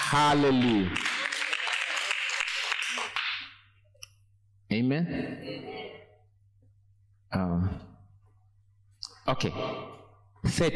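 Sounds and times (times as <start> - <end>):
audience clapping hands: 0.0 - 3.6
speech: 0.1 - 1.1, 4.7 - 6.0, 7.3 - 7.9, 9.3 - 10.7.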